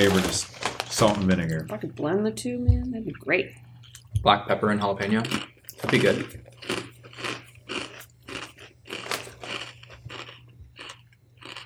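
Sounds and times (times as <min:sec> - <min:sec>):
crunching of salty peppery kettle-style potato chips being eaten: 0:00.0 - 0:01.7, 0:05.0 - 0:11.6
speech: 0:00.0 - 0:06.8.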